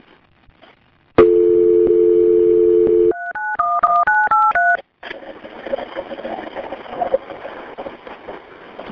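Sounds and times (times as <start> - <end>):
telephone dial tone: 1.2 - 4.8
touch-tone dialing beeps: 2.0 - 4.8.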